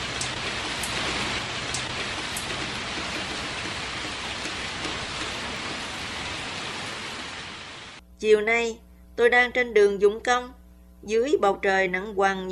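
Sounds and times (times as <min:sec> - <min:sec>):
heavy rain pouring: 0:00.0 - 0:08.0
speech: 0:08.2 - 0:12.5.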